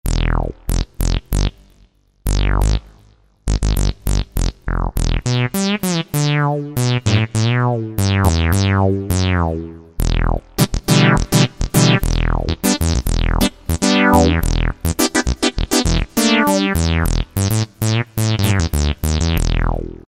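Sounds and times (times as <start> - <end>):
funky synth: 0.0 - 1.6, 2.2 - 20.0.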